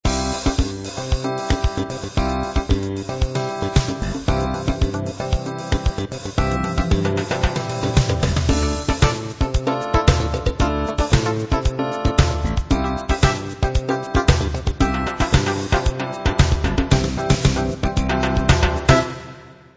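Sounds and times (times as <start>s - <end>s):
jazz samba music: 0.1s - 19.4s.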